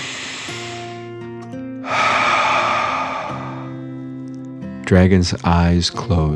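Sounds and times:
deep breath in and out: 0:00.0 - 0:01.2, 0:01.8 - 0:04.2
calm music with quiet sustained tones: 0:00.0 - 0:06.3
speech: 0:04.9 - 0:06.3.

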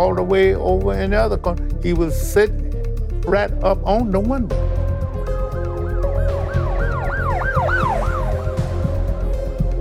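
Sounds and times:
speech: 0:00.0 - 0:04.7
ambulance siren wailing: 0:05.4 - 0:09.2.

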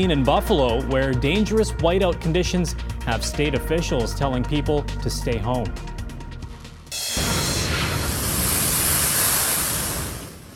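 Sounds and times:
speech: 0:00.0 - 0:06.0
heavy ocean waves crashing on coast: 0:07.0 - 0:10.5.

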